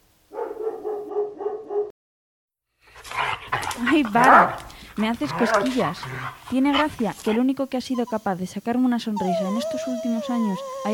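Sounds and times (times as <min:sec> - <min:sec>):
dog tied up in a garden barking: 0:00.3 - 0:01.9, 0:03.6 - 0:07.4
speech: 0:03.8 - 0:10.9.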